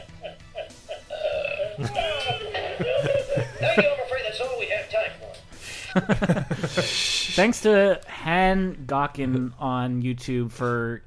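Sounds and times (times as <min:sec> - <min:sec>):
laughter: 0:00.0 - 0:04.1, 0:05.7 - 0:07.1
long drawn-out burp: 0:01.0 - 0:01.8
speech: 0:01.8 - 0:02.0, 0:03.8 - 0:04.0, 0:06.0 - 0:11.0.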